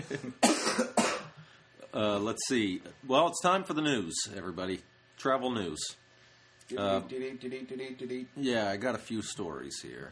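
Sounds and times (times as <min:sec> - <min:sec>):
person coughing harshly: 0:00.4 - 0:01.4
speech: 0:02.0 - 0:06.0, 0:06.7 - 0:10.1.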